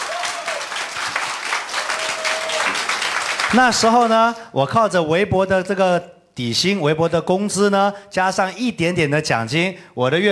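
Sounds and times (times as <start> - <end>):
audience applause: 0.0 - 4.1
speech: 3.5 - 10.3.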